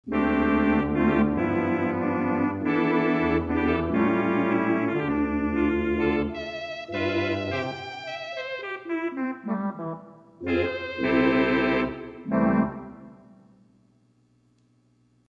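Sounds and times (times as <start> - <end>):
theatre organ with 8' Tibia and 8' Tuba stops: 0.0 - 13.4.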